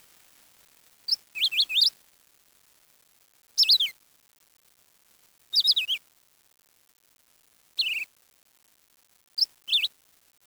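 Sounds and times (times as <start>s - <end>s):
high-pitched bird chirps: 1.1s - 1.9s, 3.6s - 3.9s, 5.6s - 6.0s, 7.8s - 8.0s, 9.4s - 9.9s.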